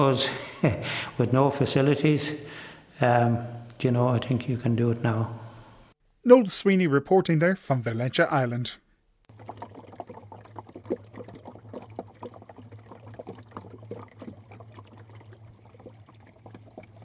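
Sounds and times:
speech: 0:00.0 - 0:05.4, 0:06.2 - 0:08.8
water lapping against the hull of an angling boat on a trout lake in County Waterford, Ireland: 0:09.3 - 0:17.0.

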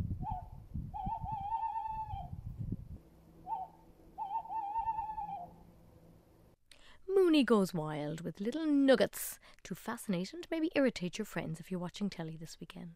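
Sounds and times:
tawny owl hooting: 0:00.2 - 0:02.4, 0:03.4 - 0:05.7
speech: 0:07.4 - 0:12.9.

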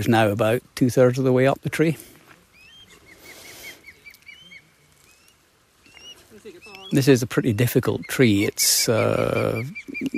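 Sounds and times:
speech: 0:00.0 - 0:02.1, 0:06.9 - 0:10.1
faint noise: 0:00.0 - 0:10.1
osprey calling near its nest tree in Ireland: 0:02.5 - 0:10.1.

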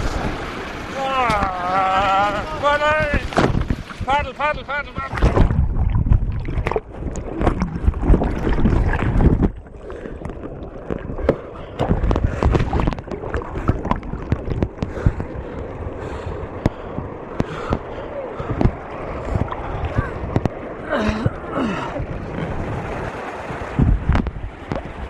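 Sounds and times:
heavy splashing as a kayaker falls into weir water: 0:00.0 - 0:25.0
rushing churning weir water roaring: 0:00.0 - 0:25.0
wind buffeting on the microphone: 0:00.0 - 0:25.0
kayaker crying out: 0:01.0 - 0:02.5.

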